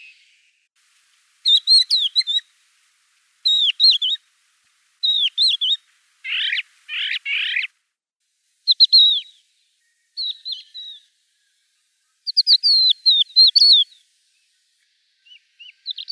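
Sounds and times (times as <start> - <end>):
crested lark Galerida cristata singing: 0.8 - 7.7, 8.5 - 11.6, 12.3 - 14.1.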